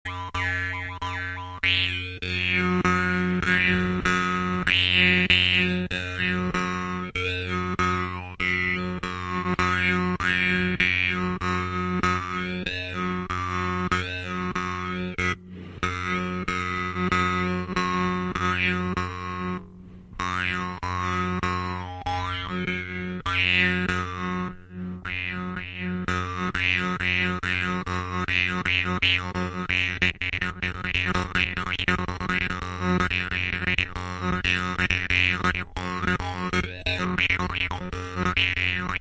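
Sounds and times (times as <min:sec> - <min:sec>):
Altai jaw harp: 0:00.0 - 0:38.9.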